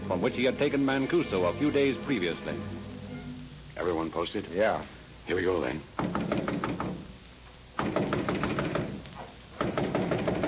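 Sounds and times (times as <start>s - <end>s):
speech: 0.1s - 2.9s, 3.8s - 6.4s
rapid firm knocking on the door of a flat during a raid: 6.0s - 7.1s, 7.8s - 9.0s, 9.6s - 10.4s.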